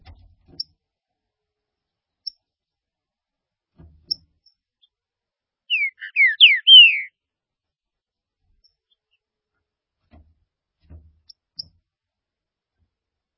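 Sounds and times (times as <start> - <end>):
green-winged saltator singing downslurred whistled notes: 5.7 - 7.1.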